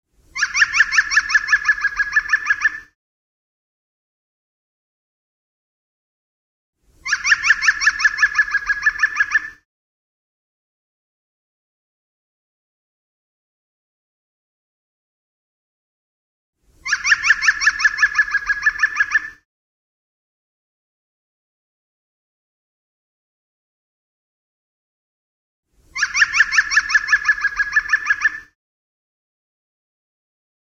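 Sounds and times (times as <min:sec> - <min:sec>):
green woodpecker call: 0:00.4 - 0:03.0, 0:07.0 - 0:09.6, 0:16.8 - 0:19.4, 0:26.0 - 0:28.6.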